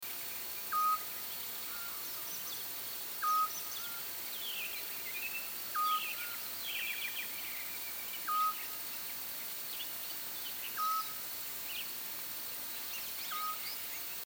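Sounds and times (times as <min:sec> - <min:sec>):
scops owls calling: 0:00.6 - 0:04.8, 0:05.4 - 0:07.4, 0:08.2 - 0:08.8, 0:10.6 - 0:11.2, 0:13.2 - 0:13.9.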